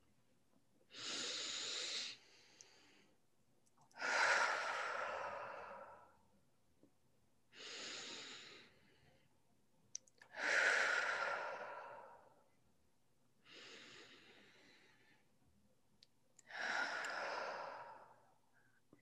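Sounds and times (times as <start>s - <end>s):
deep slow breathing during a grounding exercise: 0.9s - 3.2s, 4.0s - 6.3s, 10.3s - 12.5s, 13.4s - 15.3s, 16.4s - 18.8s.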